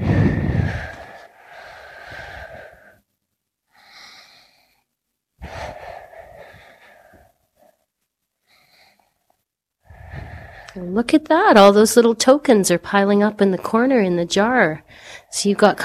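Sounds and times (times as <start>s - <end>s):
deep slow breaths taken to calm the body: 0.0s - 10.9s
speech: 10.8s - 15.8s.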